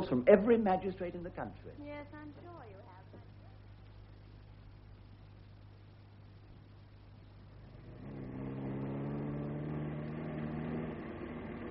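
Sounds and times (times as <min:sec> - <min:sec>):
speech: 0:00.1 - 0:02.8
car engine as the car is driven fast: 0:07.6 - 0:11.6.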